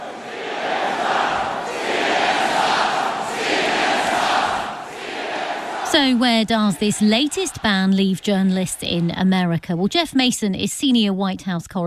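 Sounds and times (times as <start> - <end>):
large rally crowd chanting a slogan in unison: 0.0 - 9.6
speech: 6.0 - 11.8.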